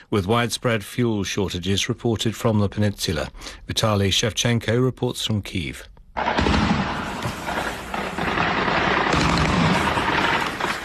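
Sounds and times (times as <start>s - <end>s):
speech: 0.0s - 6.6s
anti-aircraft gunfire shooting at drones: 6.2s - 10.8s
dull booms: 6.2s - 10.8s.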